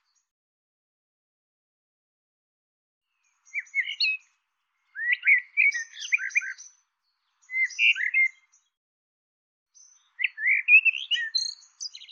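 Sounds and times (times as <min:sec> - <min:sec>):
bird chirping and twittering: 0:03.2 - 0:08.8, 0:09.8 - 0:12.0.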